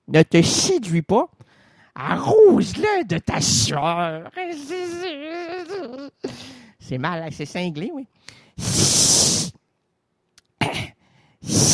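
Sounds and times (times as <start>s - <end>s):
speech: 0.1s - 1.4s, 2.0s - 9.6s
person imitating a hissing snake: 8.6s - 9.6s, 11.4s - 11.7s.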